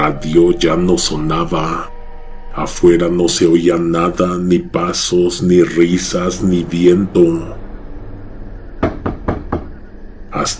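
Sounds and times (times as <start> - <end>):
speech: 0.0 - 1.9, 2.6 - 7.6, 10.3 - 10.5
sharp dry knocks on a door: 8.8 - 9.8.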